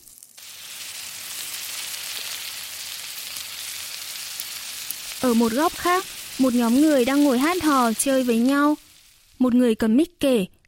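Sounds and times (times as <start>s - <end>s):
meat sizzling on a barbecue grill: 0.0s - 9.9s
speech: 5.2s - 8.8s, 9.4s - 10.6s.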